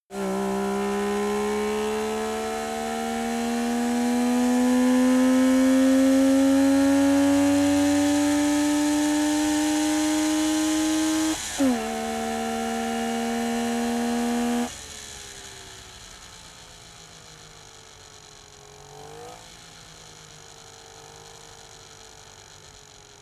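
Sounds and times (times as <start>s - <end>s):
Saab 92 car engine accelerating: 0.1s - 15.4s.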